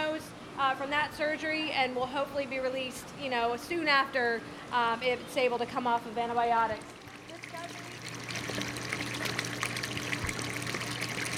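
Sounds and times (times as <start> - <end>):
low mechanical hum: 0.0 - 11.3
speech: 0.7 - 7.0
salt water pumped into turtle tanks: 6.7 - 11.3.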